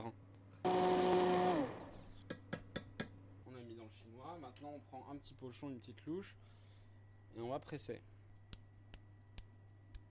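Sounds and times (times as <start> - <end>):
speech: 0.0 - 0.2, 4.4 - 6.6, 7.4 - 8.2
blender blending a blackberry and raspberry compote: 0.6 - 2.1.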